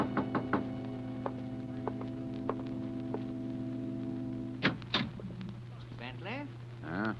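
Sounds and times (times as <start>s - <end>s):
sharp knocks and taps on a door: 0.0s - 3.2s
steady low hum: 0.0s - 7.1s.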